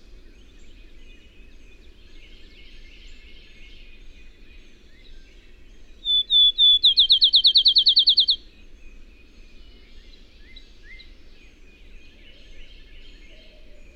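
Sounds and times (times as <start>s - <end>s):
bird song with drawn-out whistles and fast trill: 6.0s - 8.4s
faint chirps: 6.0s - 8.4s.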